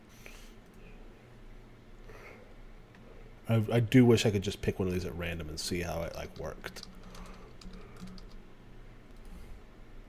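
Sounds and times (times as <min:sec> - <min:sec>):
quiet low hum: 0:00.0 - 0:10.0
speech: 0:03.5 - 0:07.0
soft computer mouse clicks: 0:06.1 - 0:08.4.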